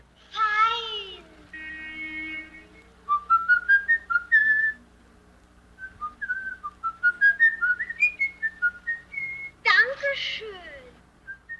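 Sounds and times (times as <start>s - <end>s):
person whistling a short melody: 3.1s - 4.8s, 5.8s - 9.5s.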